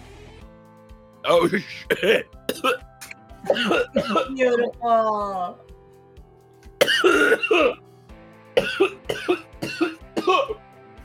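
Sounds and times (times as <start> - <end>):
speech: 1.2 - 5.7, 7.0 - 7.8, 8.7 - 9.5, 10.3 - 10.6
harsh raspy coughs and throat clearing: 1.3 - 2.8, 3.5 - 4.7, 6.8 - 7.8, 8.6 - 10.6.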